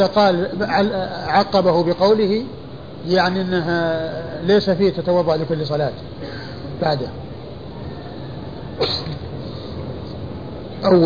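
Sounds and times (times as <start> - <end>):
speech: 0.0 - 7.2, 8.8 - 9.2, 10.8 - 11.0
steady hum: 0.0 - 11.0
single short sneeze: 8.8 - 9.2.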